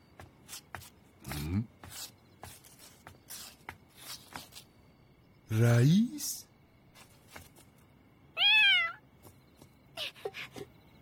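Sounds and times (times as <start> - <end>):
speech: 5.5 - 6.4
black cat meowing: 8.4 - 9.0.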